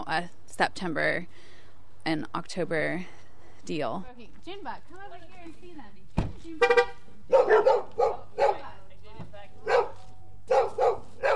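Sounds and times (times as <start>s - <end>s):
speech: 0.1s - 8.5s
dogs barking with yips and woofs at the arrival of visitors: 7.3s - 8.8s, 9.6s - 11.3s.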